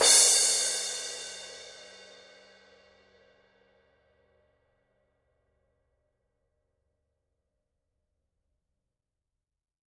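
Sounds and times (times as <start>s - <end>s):
16-inch paperthin cymbal struck on edge: 0.0s - 1.9s.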